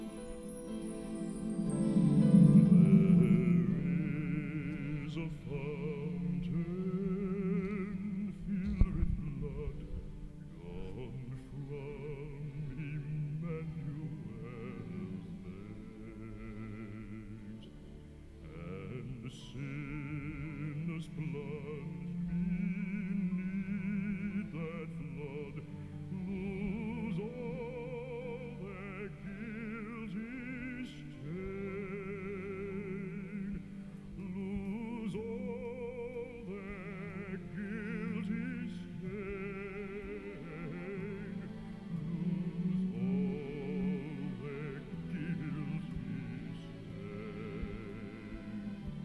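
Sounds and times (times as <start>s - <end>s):
bass-baritone singing: 0.0s - 49.0s.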